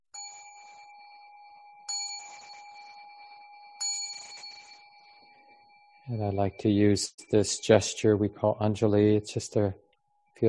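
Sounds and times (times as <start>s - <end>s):
meditation bell ringing: 0.1s - 8.2s
speech: 6.1s - 9.8s.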